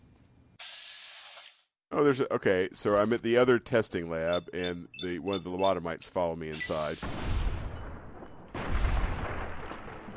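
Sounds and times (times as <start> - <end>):
speech: 1.9 - 7.3
video game gunshot fired at an enemy's head: 7.0 - 10.1.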